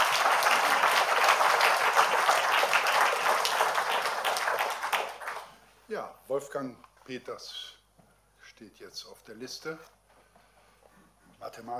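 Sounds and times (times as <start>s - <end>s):
audience applause at a university event: 0.0s - 5.6s
speech: 6.3s - 7.7s, 8.6s - 10.0s, 11.4s - 11.7s.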